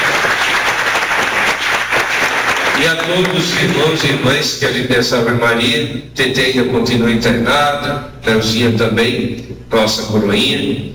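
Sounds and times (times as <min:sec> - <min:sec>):
audience applause at a church gathering: 0:00.0 - 0:04.1
speech: 0:02.8 - 0:10.9.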